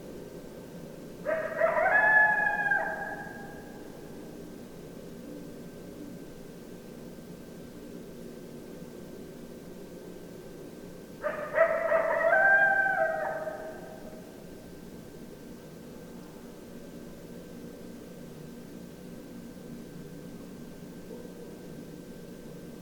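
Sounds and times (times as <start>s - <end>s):
several coyotes in a group howl: 1.2s - 3.9s, 11.2s - 14.3s.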